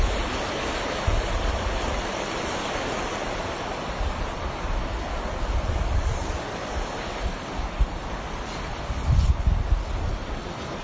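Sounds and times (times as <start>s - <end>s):
flowing river water: 0.0s - 10.8s
wind gusts buffeting the microphone: 0.0s - 10.8s.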